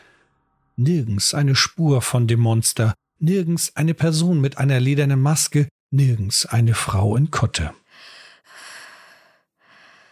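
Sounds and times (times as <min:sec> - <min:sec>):
speech: 0:00.8 - 0:08.1
heavy breathy exhalations and inhalations: 0:07.9 - 0:10.1.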